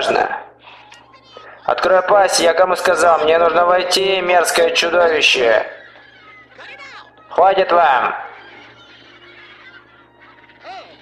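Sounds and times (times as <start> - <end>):
flock of birds honking and squawking with goose-like calls: 0.6 - 11.0
speech: 1.7 - 5.8, 7.4 - 8.3
laughter: 2.4 - 11.0.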